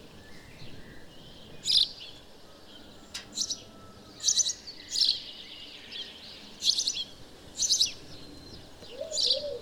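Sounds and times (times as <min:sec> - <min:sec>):
background noise: 0:00.0 - 0:09.6
house sparrow Passer domesticus chirping: 0:00.0 - 0:09.6.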